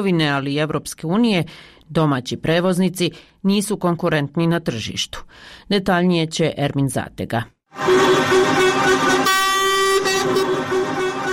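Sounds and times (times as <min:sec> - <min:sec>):
speech: 0:00.0 - 0:09.3
protest convoy truck air horns honking on main road through Sarajevo: 0:07.7 - 0:11.3
rumbling traffic on main road through Sarajevo: 0:07.8 - 0:11.3.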